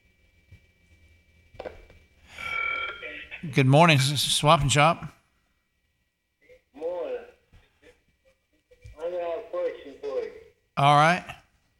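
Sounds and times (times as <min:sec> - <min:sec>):
faint steady whine: 0:00.0 - 0:11.7
telephone ringing with a loud electronic trill: 0:02.4 - 0:03.5
speech: 0:03.4 - 0:05.2, 0:10.8 - 0:11.3.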